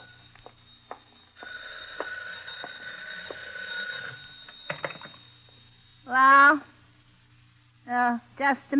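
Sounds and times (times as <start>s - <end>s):
old-style telephone bell ringing: 0.0s - 6.7s
speech: 6.1s - 6.7s, 7.9s - 8.7s.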